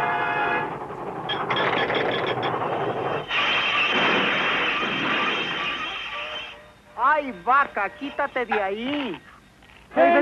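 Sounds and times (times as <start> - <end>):
cartoon train passing: 0.0 - 9.2
clattering mechanical rattles of a cartoon train: 0.7 - 6.0
speech: 7.3 - 9.3, 9.9 - 10.2.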